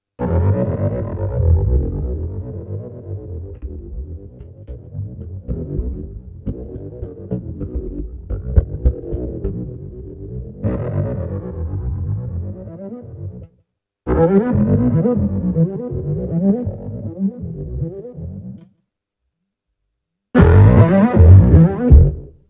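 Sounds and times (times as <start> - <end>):
keyboards: 0.2 - 18.7, 20.4 - 22.4.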